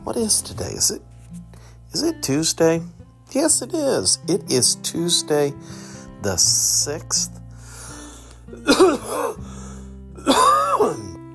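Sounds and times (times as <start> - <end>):
speech: 0.1 - 1.1, 1.9 - 7.4, 8.6 - 9.4
raspy throat clearing: 8.5 - 9.4, 10.2 - 11.0
rough phlegmy coughing: 8.5 - 9.5, 10.2 - 11.2.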